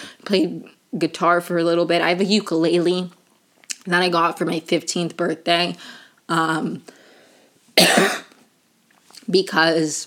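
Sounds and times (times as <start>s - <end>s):
speech: 0.0s - 3.2s, 3.8s - 7.0s, 7.8s - 8.3s, 9.3s - 10.0s
person clearing throat: 7.8s - 8.4s.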